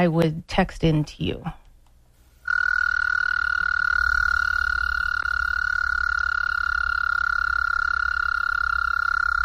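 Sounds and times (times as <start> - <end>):
speech: 0.0 - 1.6
American toad trilling call: 2.4 - 9.4.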